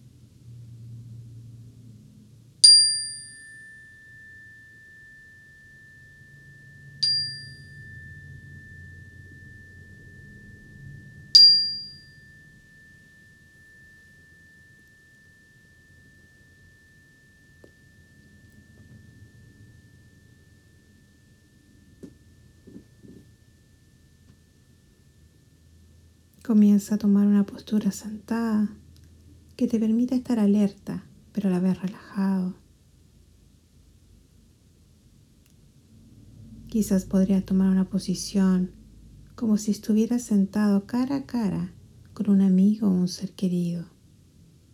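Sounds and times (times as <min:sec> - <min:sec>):
low quiet rumble: 0:00.0 - 0:44.7
meditation bell struck at the start of a meditation practice: 0:02.6 - 0:28.2
speech: 0:26.4 - 0:28.8, 0:29.6 - 0:32.6, 0:36.7 - 0:38.8, 0:39.4 - 0:43.9.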